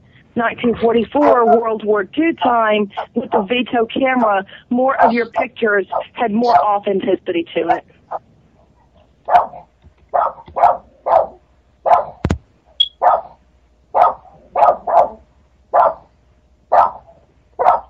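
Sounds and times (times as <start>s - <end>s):
speech: 0.4s - 8.3s
dog barking: 1.2s - 1.7s, 5.9s - 6.6s, 9.3s - 12.2s, 13.0s - 16.1s, 16.7s - 17.8s.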